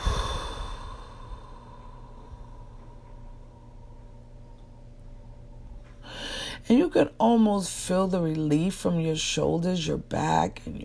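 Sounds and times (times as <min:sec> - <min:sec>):
person exhaling deeply in a deep breathing exercise: 0:00.0 - 0:02.9
speech: 0:06.7 - 0:10.8.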